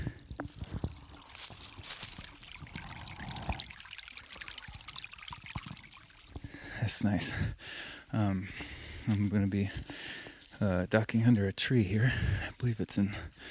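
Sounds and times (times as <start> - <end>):
babbling brook trickling and gurgling: 1.0 - 6.4
speech: 6.9 - 13.4.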